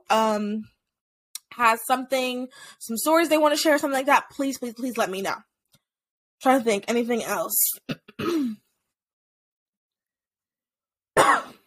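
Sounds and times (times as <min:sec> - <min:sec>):
speech: 0:00.1 - 0:00.8, 0:01.6 - 0:05.5, 0:06.4 - 0:08.6
person coughing: 0:07.9 - 0:08.7, 0:11.2 - 0:11.6.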